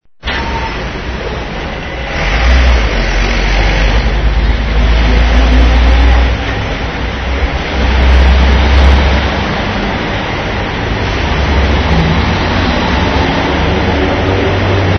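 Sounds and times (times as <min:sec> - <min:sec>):
traffic: 0:00.1 - 0:14.9.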